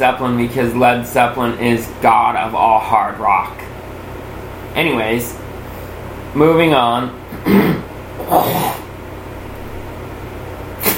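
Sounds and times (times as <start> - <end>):
speech: 0.0 - 3.6, 4.8 - 5.4, 6.3 - 8.8
man clearing throat: 7.3 - 8.9.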